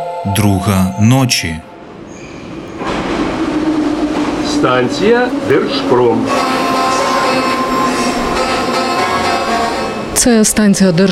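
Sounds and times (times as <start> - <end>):
speech: 0.0 - 1.7, 4.6 - 6.6, 10.2 - 11.0
underground metro train roar in Kharkiv: 0.3 - 11.0
faint metro train wheel squeal: 2.1 - 2.7.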